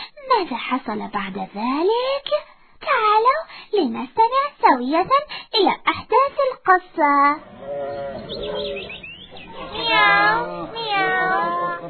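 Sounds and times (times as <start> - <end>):
speech: 0.4 - 2.5, 3.8 - 9.0
laughter: 8.7 - 11.8
cat meowing: 9.6 - 11.8.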